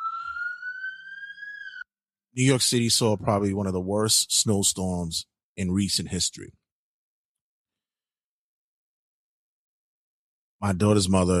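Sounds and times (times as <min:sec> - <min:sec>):
police car siren: 0:00.0 - 0:01.9
speech: 0:02.4 - 0:06.6, 0:10.6 - 0:11.3.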